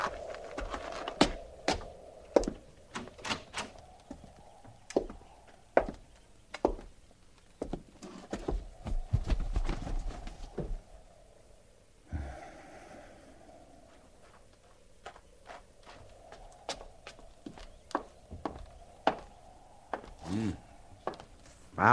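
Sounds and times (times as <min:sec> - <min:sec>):
horses walking on hard ground, hooves clip-clopping: 0:00.0 - 0:10.8, 0:13.9 - 0:20.3.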